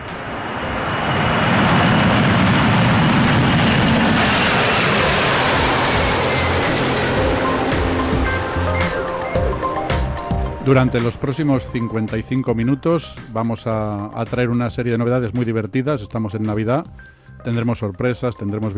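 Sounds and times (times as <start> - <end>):
airplane engine roar during takeoff: 0.0 - 14.4
speech: 10.7 - 18.7.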